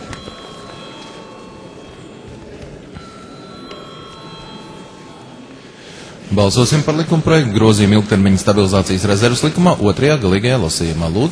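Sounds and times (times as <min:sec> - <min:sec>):
bell ringing in a parliament chamber to call a vote: 0:00.0 - 0:06.0
low noise: 0:00.0 - 0:11.3
speech: 0:06.3 - 0:11.3.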